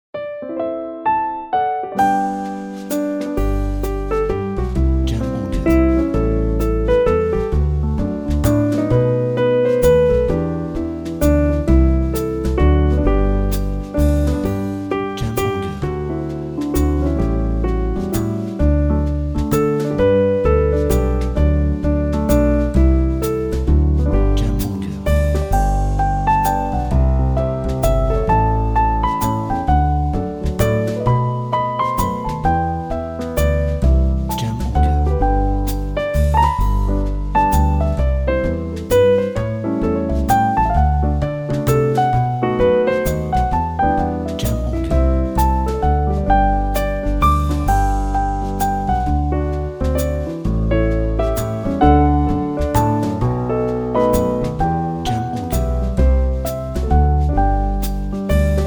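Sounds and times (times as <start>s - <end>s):
Christmas jazz music: 0.2s - 58.6s.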